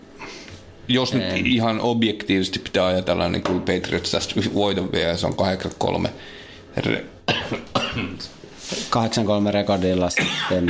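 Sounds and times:
speech: 0:00.9 - 0:10.6
man coughing: 0:07.3 - 0:08.3, 0:10.2 - 0:10.6.

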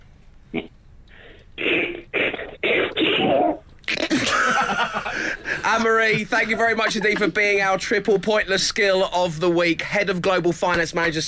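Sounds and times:
human voice imitating a cartoon duck sneezing: 0:01.6 - 0:04.1
laughter: 0:03.9 - 0:07.6
speech: 0:05.7 - 0:11.2.

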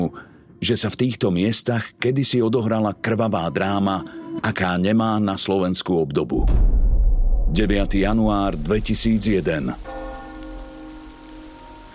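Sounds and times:
speech: 0:00.1 - 0:06.8, 0:07.5 - 0:10.0
fine dense rain falling on wet ground: 0:07.9 - 0:11.9.

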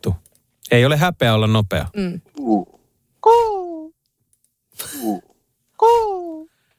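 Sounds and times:
speech: 0:00.7 - 0:03.4
person imitating a cuckoo with their voice: 0:02.2 - 0:03.9, 0:05.0 - 0:06.5.

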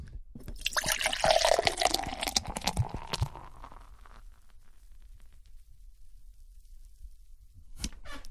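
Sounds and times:
beer pouring into a glass: 0:00.5 - 0:04.9.

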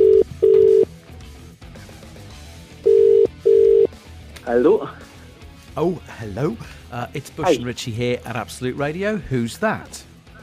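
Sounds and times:
telephone line double-pulse ringback tones: 0:00.0 - 0:00.9, 0:02.8 - 0:03.9
person answering phone: 0:02.9 - 0:03.9
speech: 0:05.8 - 0:10.1.

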